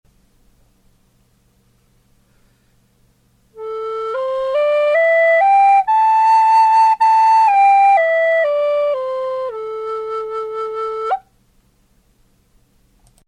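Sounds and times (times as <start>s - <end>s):
native American flutes: 3.6s - 11.3s.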